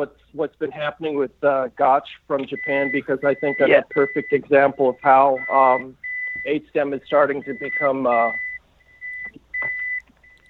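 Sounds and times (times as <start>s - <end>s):
speech: 0.0s - 8.4s
high-pitched electronic warning beeps from a vehicle backing up: 2.5s - 6.6s, 7.2s - 10.4s.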